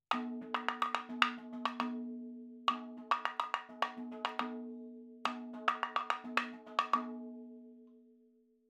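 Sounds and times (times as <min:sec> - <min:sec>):
madhalam percussion fills: 0:00.1 - 0:02.1, 0:02.7 - 0:04.7, 0:05.3 - 0:07.3.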